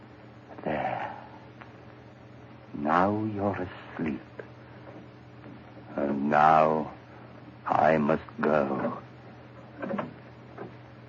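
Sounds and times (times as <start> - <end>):
low steady hum: 0.0 - 11.0
speech: 2.9 - 4.5, 6.0 - 7.0, 7.7 - 9.0
door eased open with a soft creak and clunk: 9.6 - 10.8.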